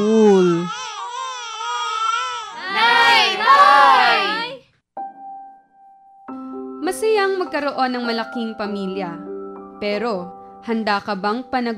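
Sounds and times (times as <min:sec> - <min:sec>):
child crying: 0:00.0 - 0:04.6
speech: 0:07.4 - 0:11.7.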